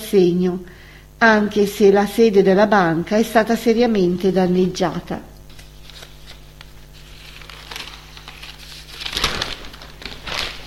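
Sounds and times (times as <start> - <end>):
speech: 0.1 - 5.3
newspaper page rustling as it is turned: 5.5 - 10.6.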